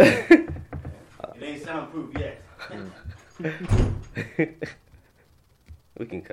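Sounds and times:
speech: 0:01.7 - 0:04.8, 0:06.0 - 0:06.3
unlocked door opening and closing: 0:03.4 - 0:04.2.

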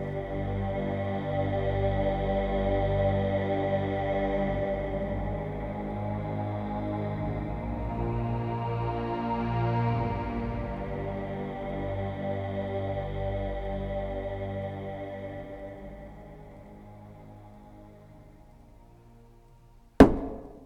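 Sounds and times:
low sustained musical drone: 0:00.0 - 0:20.0
loud sharp knock on a door: 0:20.0 - 0:20.6.

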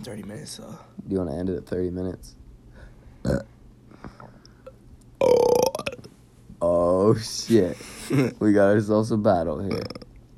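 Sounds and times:
speech: 0:00.0 - 0:02.4, 0:07.1 - 0:10.0
loud gravelly belch: 0:03.2 - 0:03.5, 0:05.2 - 0:06.1, 0:09.7 - 0:10.2
short burp: 0:03.2 - 0:03.5, 0:05.2 - 0:06.1, 0:09.7 - 0:10.1.

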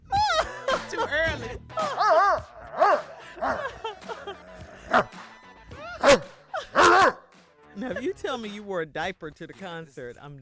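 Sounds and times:
laughter: 0:00.1 - 0:07.0
dog barking and yipping in a played song: 0:01.8 - 0:05.2, 0:05.8 - 0:07.3
speech: 0:08.3 - 0:10.4.

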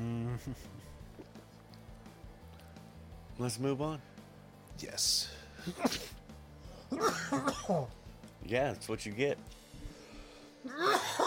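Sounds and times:
speech: 0:00.4 - 0:00.9, 0:03.4 - 0:04.1, 0:04.8 - 0:06.2, 0:06.9 - 0:09.6, 0:10.6 - 0:11.2
person coughing: 0:05.6 - 0:06.2, 0:06.9 - 0:07.9, 0:10.7 - 0:11.2
throat clearing: 0:05.6 - 0:06.2, 0:06.9 - 0:07.9.

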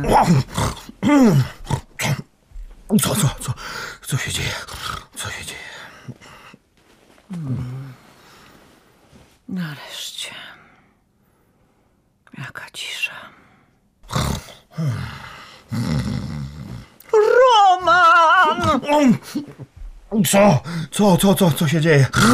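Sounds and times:
speech: 0:00.0 - 0:02.2, 0:02.9 - 0:06.2, 0:07.3 - 0:07.7, 0:09.5 - 0:10.5, 0:12.4 - 0:13.3, 0:14.8 - 0:16.1, 0:17.8 - 0:22.3
person groaning and speaking: 0:00.0 - 0:02.3, 0:02.9 - 0:05.6, 0:14.1 - 0:22.3
man snoring loudly at night: 0:14.1 - 0:17.0.

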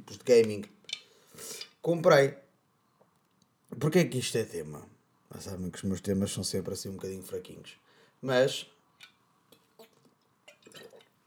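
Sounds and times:
speech: 0:00.1 - 0:00.8, 0:01.4 - 0:02.4, 0:03.7 - 0:08.8
person sipping and swallowing water: 0:09.8 - 0:11.2.

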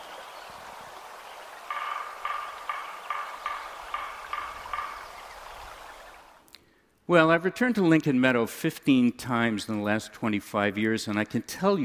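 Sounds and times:
woodpecker calling: 0:01.2 - 0:06.5
speech: 0:07.1 - 0:11.8.

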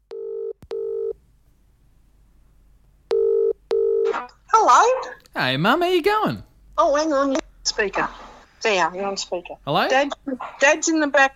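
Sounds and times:
phone ringback tone of an outgoing call: 0:00.1 - 0:01.2, 0:03.1 - 0:04.1
speech: 0:04.7 - 0:11.3.

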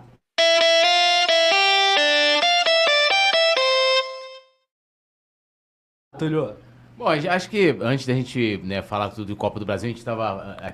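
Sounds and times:
podcast jingle of horn-like notes: 0:00.4 - 0:04.6
speech: 0:06.2 - 0:10.7.

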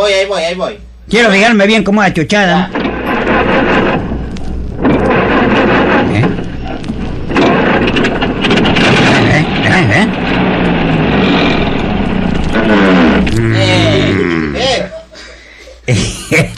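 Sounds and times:
speech: 0:00.0 - 0:02.8
car engine running roughly: 0:02.8 - 0:13.4
laughter: 0:12.7 - 0:16.5.

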